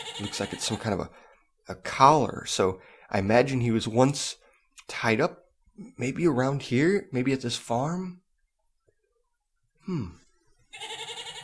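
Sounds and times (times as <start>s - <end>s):
goat bleating: 0.0s - 1.0s, 10.7s - 11.4s
speech: 0.2s - 8.2s, 9.8s - 11.0s.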